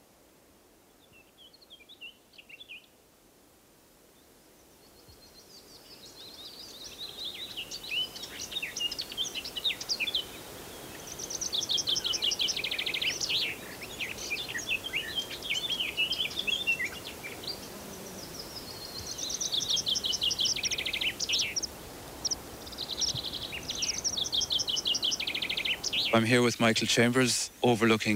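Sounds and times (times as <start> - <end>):
meadow pipits calling outdoors: 5.6 - 28.1
speech: 26.2 - 28.1.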